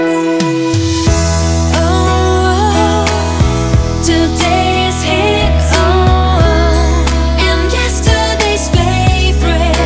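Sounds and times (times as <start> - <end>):
soft jingle in C: 0.1 - 9.7.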